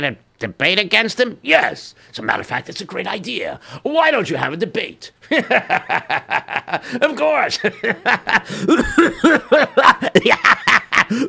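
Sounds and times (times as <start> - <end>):
speech: 0.0 - 11.2
person laughing hard in breathy cough-like bursts: 5.3 - 7.0, 7.6 - 11.2.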